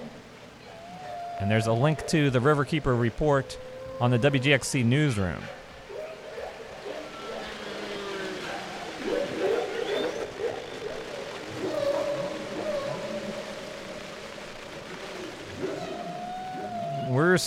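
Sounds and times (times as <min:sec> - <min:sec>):
whale calls underwater: 0:00.0 - 0:17.4
speech: 0:01.4 - 0:05.6.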